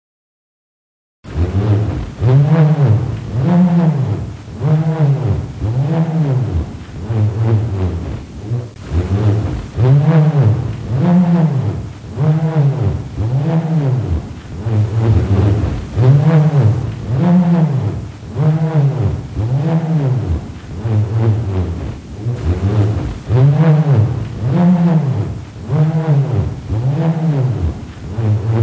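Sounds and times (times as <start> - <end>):
bullroarer whirring: 1.3 - 28.6.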